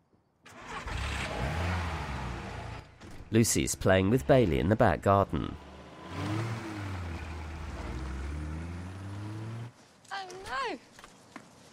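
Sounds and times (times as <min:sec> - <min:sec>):
car engine revving as the car drives away: 0:00.5 - 0:03.0, 0:03.8 - 0:09.7
speech: 0:03.3 - 0:05.7.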